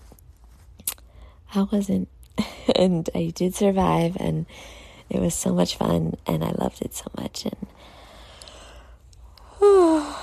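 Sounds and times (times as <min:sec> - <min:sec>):
speech: 0:01.5 - 0:08.0
person yawning: 0:09.5 - 0:10.2.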